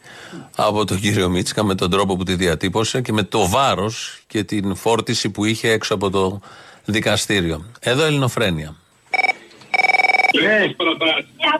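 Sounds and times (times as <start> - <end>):
speech: 0.3 - 9.3, 10.3 - 11.5
telephone ringing with rapid pulsing electronic trills: 9.1 - 10.6.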